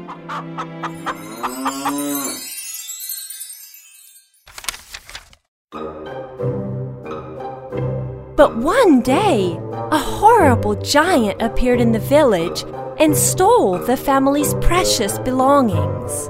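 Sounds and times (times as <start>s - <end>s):
farmyard sounds: 0.0s - 2.4s
speech: 0.3s - 2.5s, 8.4s - 16.2s
cow mooing: 0.8s - 2.4s.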